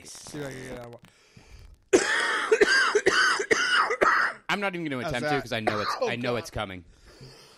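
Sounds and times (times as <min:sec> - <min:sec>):
speech: 0:00.1 - 0:01.3, 0:04.5 - 0:07.4
quiet breath: 0:01.1 - 0:01.8, 0:06.9 - 0:07.5
harsh phlegmy cough: 0:02.0 - 0:04.4, 0:05.6 - 0:06.5.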